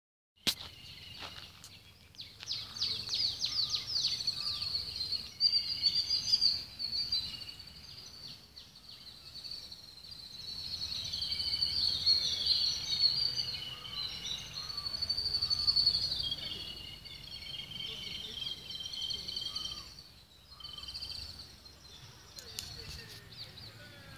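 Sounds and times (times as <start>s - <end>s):
forest sounds: 0.4s - 24.1s.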